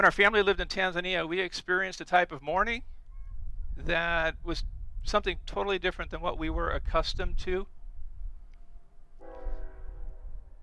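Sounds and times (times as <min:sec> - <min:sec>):
speech: 0:00.0 - 0:03.0, 0:03.8 - 0:07.8
constant low rumble: 0:02.9 - 0:10.6
chord-like train horn blast: 0:08.7 - 0:10.6.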